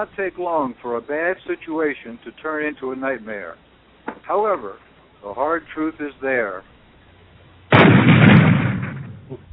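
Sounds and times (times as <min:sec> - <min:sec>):
speech: 0:00.0 - 0:03.7, 0:04.3 - 0:06.7, 0:09.3 - 0:09.5
right engine of a twin-engine jet aircraft failing with a cannon-like bang: 0:07.7 - 0:09.4.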